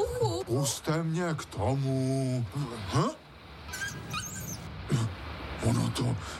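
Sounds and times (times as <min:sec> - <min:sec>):
speech: 0:00.5 - 0:03.8, 0:05.7 - 0:06.3
small dog whimpering: 0:03.7 - 0:04.7.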